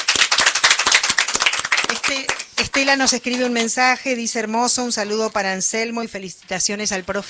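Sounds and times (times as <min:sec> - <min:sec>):
group of people applauding: 0:00.0 - 0:03.8
speech: 0:02.1 - 0:07.2.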